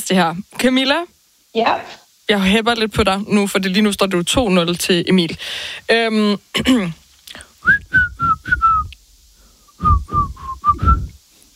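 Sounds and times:
speech: 0.1 - 8.6
person whistling a pop song melody: 7.6 - 9.0, 9.8 - 11.2
short vocal sound: 9.8 - 11.2.

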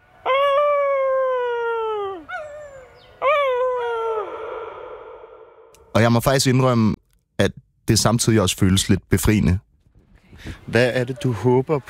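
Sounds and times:
person imitating a wolf howl: 0.2 - 5.4
speech: 6.0 - 9.7, 10.4 - 11.8.

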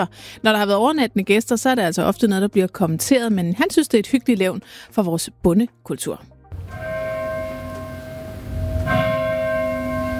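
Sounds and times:
speech: 0.0 - 6.3
church bells ringing: 6.6 - 10.1.

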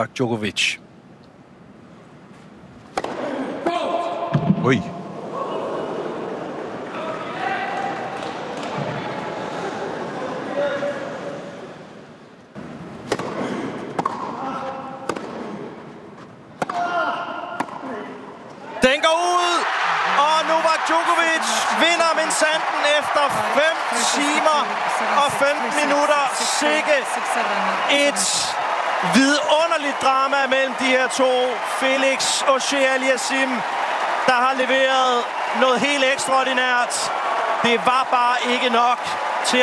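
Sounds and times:
speech: 0.0 - 0.8, 4.6 - 5.0, 24.6 - 39.6
tennis racket hitting ball in a match-point rally: 2.9 - 3.3, 13.0 - 14.4, 15.0 - 15.6, 16.6 - 17.8
crowd eruption after match point: 3.0 - 11.7, 18.5 - 39.6.

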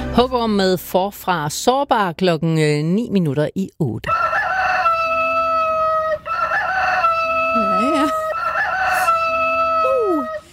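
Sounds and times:
speech: 0.2 - 4.4
rooster crowing: 4.1 - 10.5.

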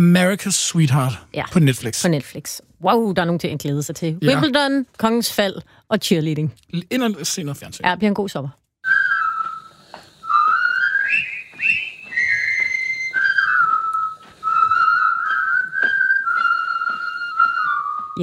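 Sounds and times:
speech: 0.0 - 8.6
group of people whistling a jaunty march melody in unison: 8.8 - 18.2.

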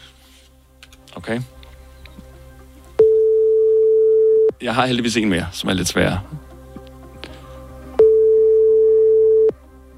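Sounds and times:
speech: 1.2 - 1.6, 4.6 - 6.5
mid-pitched telephone ringback tone: 3.0 - 4.5, 8.0 - 9.6.

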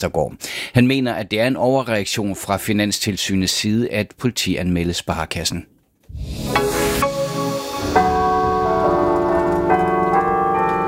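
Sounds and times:
speech: 0.0 - 6.7
carillon bells ringing in a cathedral: 7.2 - 10.8.

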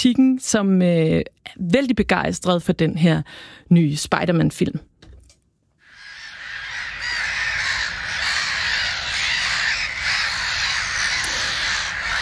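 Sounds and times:
speech: 0.0 - 4.9
black-headed gulls calling: 5.8 - 12.1.

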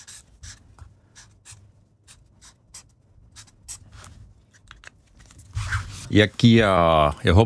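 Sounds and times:
pen scratching on a paper notepad writing a grade: 0.0 - 3.9
speech: 6.1 - 7.4.

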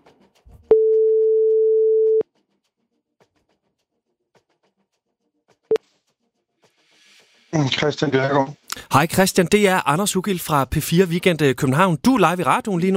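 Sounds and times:
telephone ringback tone on a live radio call: 0.7 - 2.2
speech: 7.6 - 12.9.

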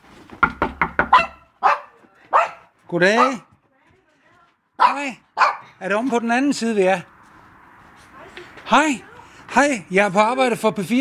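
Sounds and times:
small dog barking: 1.1 - 3.5, 4.8 - 5.7
speech: 2.9 - 3.5, 5.0 - 7.1, 8.7 - 10.9.

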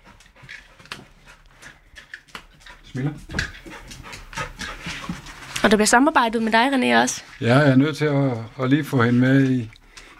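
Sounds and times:
Labrador sniffer dog sniffing in quick breathy bursts: 0.0 - 5.7
speech: 3.0 - 3.5, 5.6 - 9.8.

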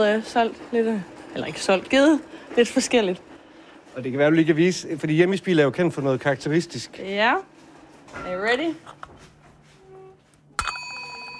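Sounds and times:
speech: 0.0 - 3.3, 4.0 - 7.5, 8.1 - 9.1
small broken bell with a spoon attached struck: 10.6 - 11.3.

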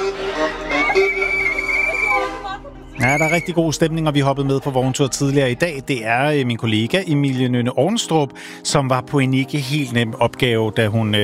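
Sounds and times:
lively festive crowd: 0.0 - 5.8
whistle blowing: 0.5 - 3.8
speech: 3.1 - 11.2.

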